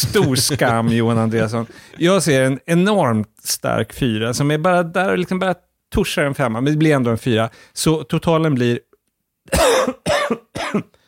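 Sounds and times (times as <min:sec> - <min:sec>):
laughter: 0:00.0 - 0:02.1
speech: 0:00.0 - 0:08.9, 0:09.5 - 0:11.0
person coughing: 0:09.5 - 0:11.0.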